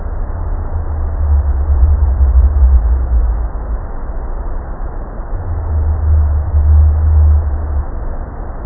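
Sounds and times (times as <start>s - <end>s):
pygmy blue whale nonsong calls: 0.2s - 3.9s, 5.3s - 8.1s.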